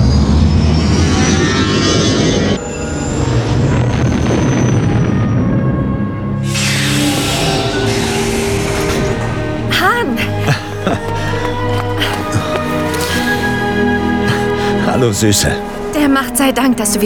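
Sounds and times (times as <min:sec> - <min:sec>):
spaceship engine roar on landing approach: 0:00.0 - 0:15.0
spaceship hissing thrust blast: 0:06.4 - 0:09.7
laughter: 0:09.7 - 0:15.1
speech: 0:15.0 - 0:17.0.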